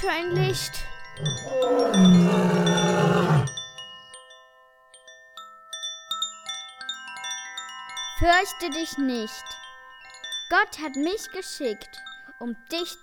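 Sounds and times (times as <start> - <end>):
speech: 0.0 - 3.0, 8.2 - 9.6, 10.5 - 13.0
shimmering chime-like tones: 0.0 - 10.5
lion roaring: 0.3 - 3.6.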